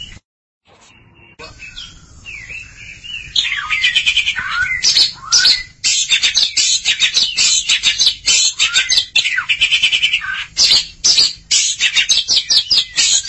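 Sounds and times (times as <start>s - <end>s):
Oriental magpie-robin song: 0.0s - 13.2s.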